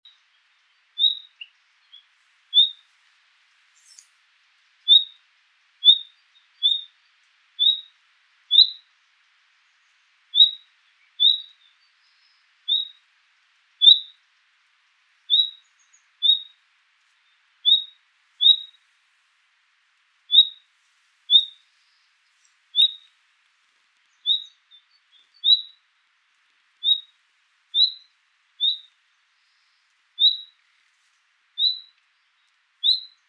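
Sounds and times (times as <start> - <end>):
Luscinia megarhynchos singing: 0.0 - 2.9, 4.8 - 5.2, 5.8 - 8.9, 9.7 - 13.0, 13.8 - 14.2, 15.3 - 16.6, 17.2 - 18.8, 20.3 - 20.6, 21.3 - 23.1, 24.0 - 25.9, 26.8 - 30.9, 31.6 - 33.2.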